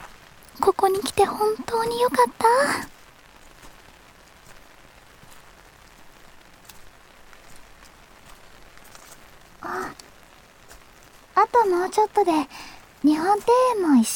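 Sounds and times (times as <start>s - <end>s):
steady rain in a Japanese garden at a hot spring: 0.0s - 14.1s
speech: 0.6s - 3.0s, 11.5s - 14.1s.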